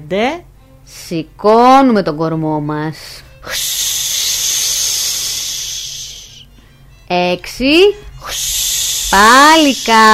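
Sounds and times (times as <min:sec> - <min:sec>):
speech: 0:00.1 - 0:03.7, 0:07.1 - 0:10.1
person imitating a snake's hiss during a cobra exercise: 0:03.4 - 0:06.5, 0:08.2 - 0:10.1.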